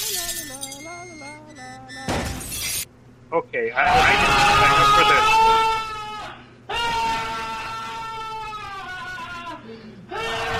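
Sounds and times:
speech: 0:03.3 - 0:05.4
man's wavering strained vocal cry: 0:03.9 - 0:10.5.

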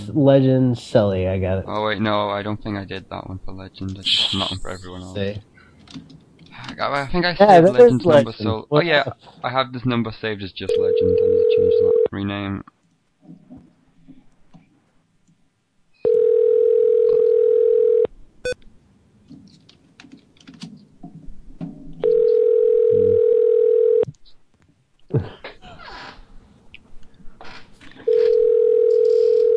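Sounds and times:
speech: 0:00.0 - 0:13.5, 0:25.1 - 0:25.3
ringback tone of an unanswered outgoing phone call: 0:10.7 - 0:12.1, 0:16.0 - 0:18.1, 0:22.0 - 0:24.0, 0:28.1 - 0:29.5.

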